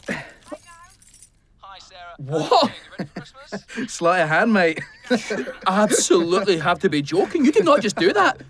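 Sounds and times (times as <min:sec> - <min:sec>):
spare pair of keys jangling as they are pulled out: 0:00.0 - 0:01.4
speech: 0:02.0 - 0:08.4
laughter: 0:02.3 - 0:04.0, 0:04.6 - 0:08.4.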